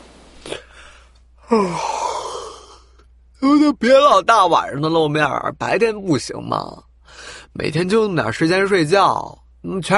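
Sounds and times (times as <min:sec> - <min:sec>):
person yawning: 0:01.4 - 0:03.0
speech: 0:01.5 - 0:01.9, 0:03.7 - 0:09.9.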